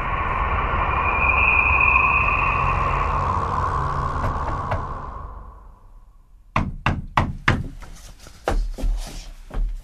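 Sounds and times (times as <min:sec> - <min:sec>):
steady engine-like rumble: 0:00.0 - 0:06.4
loud sharp raps on a door: 0:06.5 - 0:07.8.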